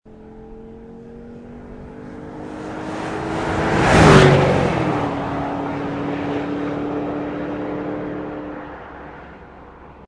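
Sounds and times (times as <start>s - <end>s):
Porsche Cayenne passing by: 1.2s - 10.0s.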